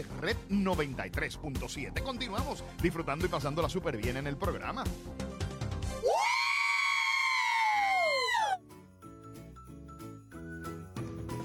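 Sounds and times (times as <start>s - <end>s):
speech: 0.0s - 5.3s
high-pitched scream: 6.0s - 8.6s.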